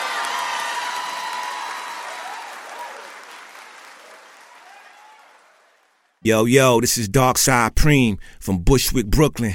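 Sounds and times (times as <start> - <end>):
crowd cheers and whoops: 0.0 - 5.9
audience clapping hands: 0.0 - 6.2
speech: 6.2 - 9.5.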